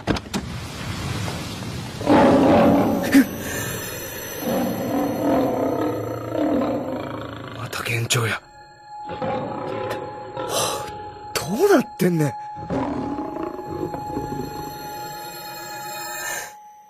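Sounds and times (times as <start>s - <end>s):
lion roaring: 2.0s - 3.8s, 4.4s - 7.8s, 9.1s - 11.0s, 12.6s - 14.4s
speech: 8.1s - 8.5s, 11.6s - 12.5s.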